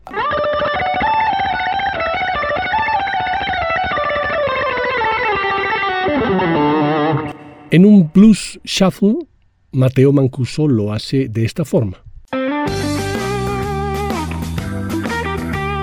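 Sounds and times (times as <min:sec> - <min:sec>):
distorted electric guitar played with rapid tremolo picking: 0:00.0 - 0:07.8, 0:12.4 - 0:15.8
speech: 0:07.7 - 0:12.0.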